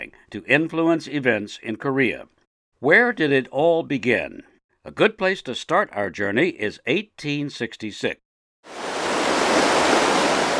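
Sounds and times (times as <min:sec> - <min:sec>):
speech: 0:00.0 - 0:08.9
steamship paddle wheels churning river water: 0:08.8 - 0:10.5.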